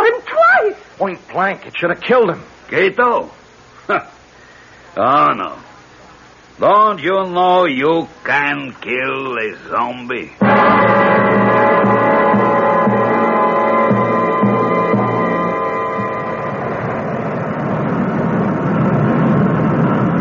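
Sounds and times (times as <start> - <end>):
speech: 1.0 - 4.2, 5.0 - 5.7, 6.6 - 11.1
airplane engines droning while coming in for a landing: 7.8 - 20.1.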